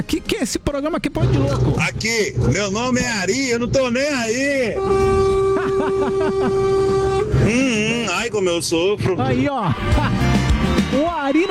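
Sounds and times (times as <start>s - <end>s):
speech: 0.0s - 11.4s
horn blaring continuously: 1.2s - 8.6s
laughter: 5.0s - 8.1s, 9.7s - 10.5s.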